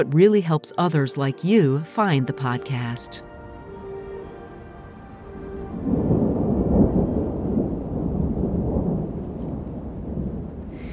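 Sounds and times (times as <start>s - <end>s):
speech: 0.0s - 3.3s
rolling thunder: 3.3s - 10.9s.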